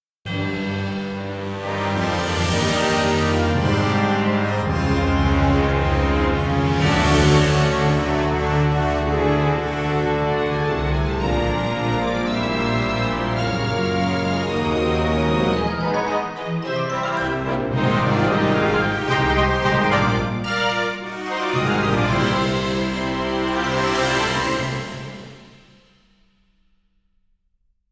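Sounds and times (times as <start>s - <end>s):
fanfare: 0.3s - 25.6s.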